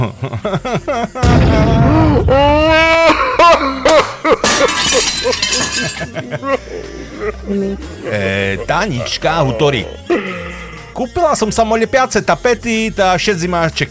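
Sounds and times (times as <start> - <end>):
speech: 0.0 - 3.8, 4.5 - 13.8
people laughing: 0.0 - 10.7
wine glass shattering: 3.9 - 6.2
glass pieces clinking: 4.4 - 6.1.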